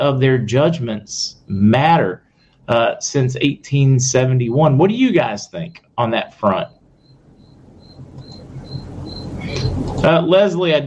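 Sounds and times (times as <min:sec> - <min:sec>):
speech: 0:00.0 - 0:06.8, 0:09.5 - 0:10.8
outdoor noise: 0:00.0 - 0:10.8
coquí frog calling in Puerto Rico: 0:06.6 - 0:10.0.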